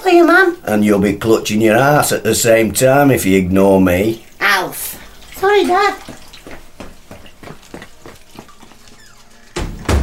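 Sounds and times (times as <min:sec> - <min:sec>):
speech: 0:00.1 - 0:06.6
soft footsteps: 0:05.0 - 0:10.0
door pushed shut with a foot with a heavy thud: 0:09.6 - 0:10.0.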